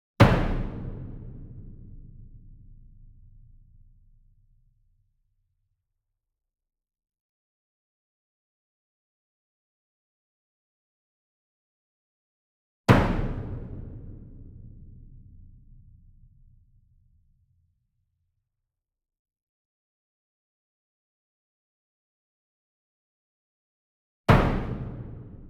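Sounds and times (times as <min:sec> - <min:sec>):
66 inch bass drum hit hard with medium beater: 0:00.2 - 0:03.0, 0:12.9 - 0:15.5, 0:24.3 - 0:25.4.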